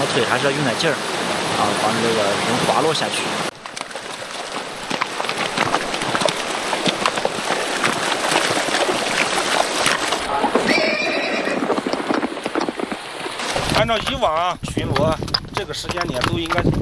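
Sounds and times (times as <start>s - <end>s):
patrol horses wading and splashing across a gravel-bed river: 0.0s - 16.8s
speech: 0.1s - 3.5s, 13.8s - 16.8s
horse hoof strikes on gravel riverbed: 3.5s - 16.8s
horse whinny: 5.7s - 13.0s.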